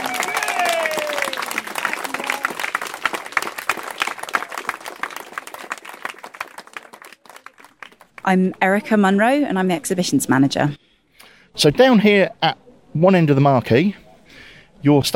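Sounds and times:
crowd cheers and whoops: 0.0s - 2.8s
crowd applauding: 0.0s - 8.3s
speech: 8.3s - 10.8s, 11.6s - 14.0s, 14.8s - 15.1s.

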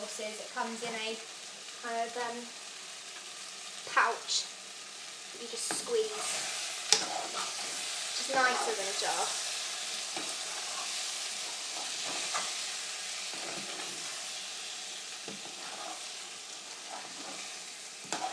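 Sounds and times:
mince and vegetables sizzling in sauce in a pan: 0.0s - 18.3s
speech: 0.2s - 2.6s, 3.8s - 4.6s, 5.4s - 9.4s
soft stirring scrapes in a pan: 5.7s - 18.3s.

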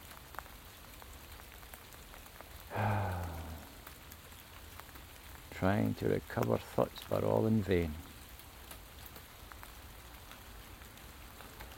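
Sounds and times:
steady rain pattering on a hard surface: 0.0s - 11.7s
speech: 5.6s - 8.1s.

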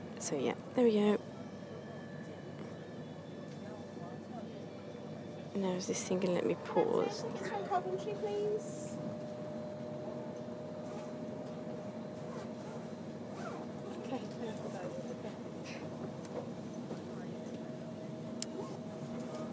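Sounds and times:
speech: 0.2s - 1.4s, 5.6s - 9.1s
train interior low rumble and droning hum: 5.5s - 19.5s.

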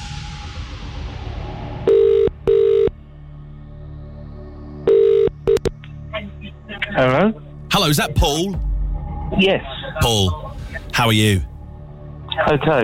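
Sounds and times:
phone line ringing tone in double bursts: 1.9s - 2.9s, 4.9s - 5.6s
telephone dialing beeps: 4.9s - 5.7s
speech: 7.0s - 8.7s, 9.3s - 11.5s, 12.4s - 12.8s.

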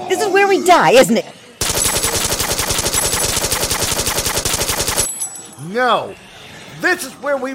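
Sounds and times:
speech: 0.0s - 1.4s, 5.7s - 6.2s, 6.8s - 7.5s
rapid automatic gunfire: 1.6s - 5.2s.

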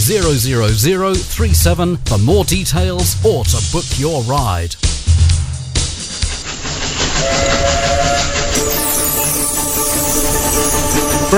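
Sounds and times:
steam train chuffing through winter countryside: 0.0s - 11.3s
speech: 0.1s - 4.9s, 7.2s - 7.9s
steam train whistle-like tone: 7.2s - 11.3s.

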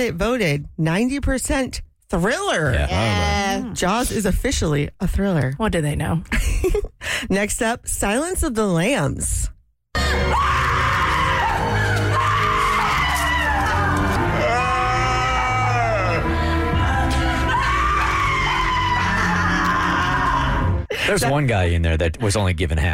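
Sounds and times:
speech: 0.0s - 9.6s, 21.0s - 22.9s
many people screaming in horror: 10.0s - 20.9s.

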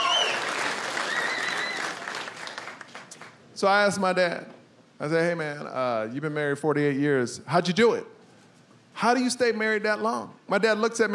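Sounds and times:
audience whoops and cheers: 0.0s - 2.2s
audience applause: 0.0s - 3.4s
speech: 3.6s - 8.2s, 9.0s - 11.1s.

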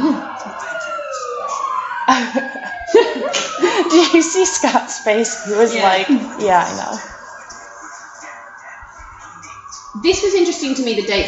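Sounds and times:
emergency vehicle siren wailing outside: 0.0s - 11.2s
laughter: 0.0s - 11.2s
speech: 2.1s - 7.1s, 10.0s - 11.2s.

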